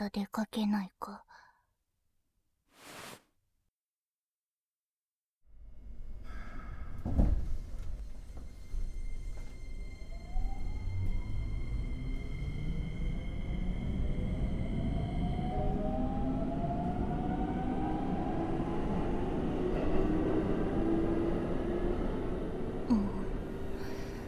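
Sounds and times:
speech: 0:00.0 - 0:01.4
train rumbling along the rails: 0:06.5 - 0:24.2.

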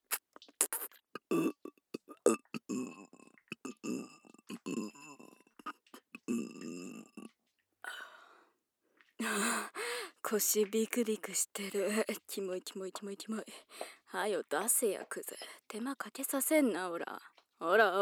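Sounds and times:
person burping: 0:00.6 - 0:07.3
speech: 0:10.3 - 0:18.0.

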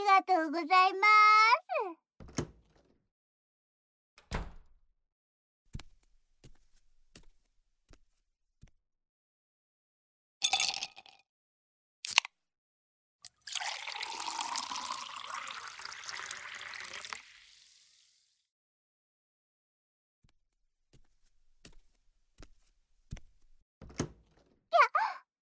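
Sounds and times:
speech: 0:00.2 - 0:01.6
door creaking as it swings open: 0:02.2 - 0:03.0, 0:04.2 - 0:04.8, 0:23.8 - 0:24.6
door handle and frame clicks and thuds: 0:04.2 - 0:04.7
cold tea pouring into a glass: 0:10.4 - 0:11.0, 0:13.3 - 0:18.3.

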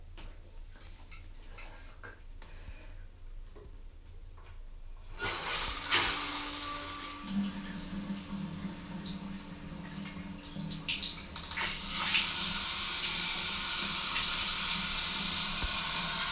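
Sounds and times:
shower water running: 0:05.0 - 0:16.3.

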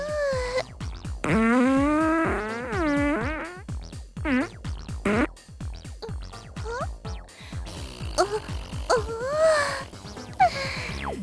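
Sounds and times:
voice imitating farts during a butt-shaking dance: 0:00.0 - 0:00.6, 0:01.2 - 0:05.3, 0:06.0 - 0:06.9, 0:08.2 - 0:09.8.

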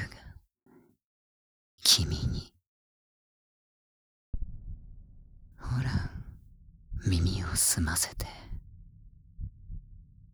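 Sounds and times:
speech: 0:01.8 - 0:02.6, 0:07.1 - 0:08.4
faint continuous low rumble: 0:04.4 - 0:10.3
soft heartbeat: 0:04.4 - 0:10.3.

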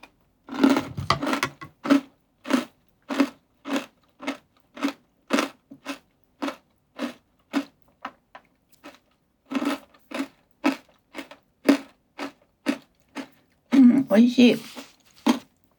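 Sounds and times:
crisp crunching bites of a cocoa-flavoured snack: 0:00.5 - 0:08.2, 0:08.8 - 0:13.4
speech: 0:14.1 - 0:14.7.

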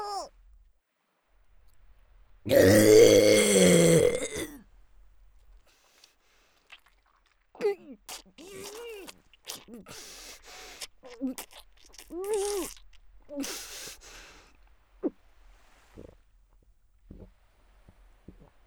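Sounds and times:
long loud rumbling burp: 0:02.5 - 0:04.6
shorter softer throaty sounds: 0:02.5 - 0:04.6.

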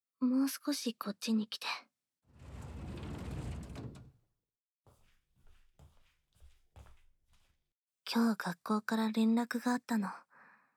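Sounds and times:
speech: 0:00.2 - 0:01.9, 0:08.1 - 0:10.3
sliding door rumbling shut: 0:02.3 - 0:04.1
soft footsteps shuffling across the floor: 0:04.9 - 0:07.6.

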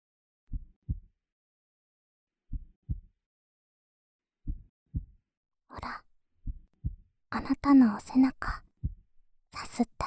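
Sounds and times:
slow heartbeat in a person's chest thumping: 0:00.5 - 0:01.1, 0:02.5 - 0:03.1, 0:04.5 - 0:05.2, 0:06.4 - 0:07.1, 0:08.4 - 0:09.1
speech: 0:07.3 - 0:08.6, 0:09.6 - 0:10.0.

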